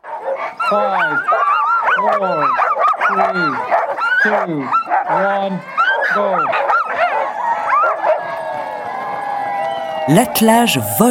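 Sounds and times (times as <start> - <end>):
sled dog team barking and yipping at the Yukon Quest race start: 0.0 - 10.0
sled dogs whining: 0.2 - 8.4
speech: 0.4 - 6.7, 10.1 - 11.1.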